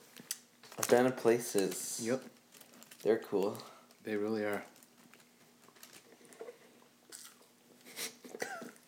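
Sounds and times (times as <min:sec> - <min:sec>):
speech: 0:00.9 - 0:02.4, 0:03.0 - 0:04.8
crunchy chewing on french fries: 0:04.8 - 0:08.8.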